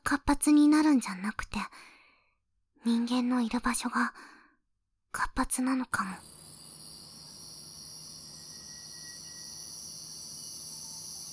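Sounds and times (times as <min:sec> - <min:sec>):
speech: 0:00.1 - 0:01.9, 0:02.8 - 0:04.4, 0:05.1 - 0:06.4
cicada singing from a tree: 0:06.2 - 0:11.3.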